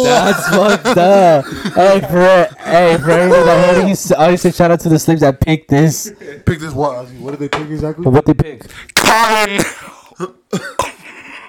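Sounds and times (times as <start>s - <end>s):
laughter: 0.0s - 4.3s
speech: 0.0s - 10.9s
raspy phlegmy smoker's cough: 9.6s - 11.4s
throat clearing: 9.6s - 11.4s.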